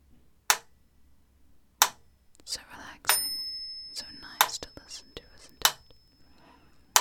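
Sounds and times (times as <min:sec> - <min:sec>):
slow sharp ticks: 0:00.5 - 0:00.7, 0:01.8 - 0:02.5, 0:04.4 - 0:04.8, 0:05.4 - 0:06.9
soft whispering: 0:02.3 - 0:03.1, 0:03.9 - 0:06.6
bell ringing: 0:03.1 - 0:06.9.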